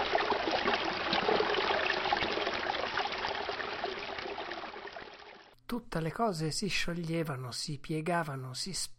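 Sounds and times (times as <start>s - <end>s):
running stream water rushing and bubbling: 0.0s - 5.5s
speech: 5.7s - 8.9s.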